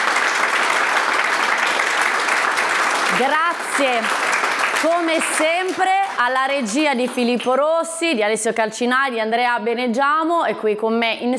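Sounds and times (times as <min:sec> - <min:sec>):
sizable crowd applauding: 0:00.0 - 0:07.6
speech: 0:03.2 - 0:04.2, 0:04.8 - 0:11.3.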